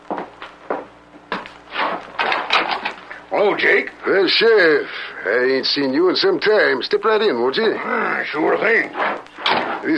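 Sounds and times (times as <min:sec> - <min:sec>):
footsteps: 0:00.0 - 0:03.2, 0:08.5 - 0:09.9
door opening with a click and scraping swing: 0:01.7 - 0:03.0, 0:08.9 - 0:09.9
speech: 0:03.3 - 0:09.2.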